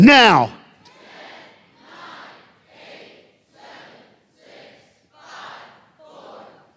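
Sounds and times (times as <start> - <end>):
crowd yelling a countdown in unison: 0.0 - 0.6
speech: 0.0 - 0.6.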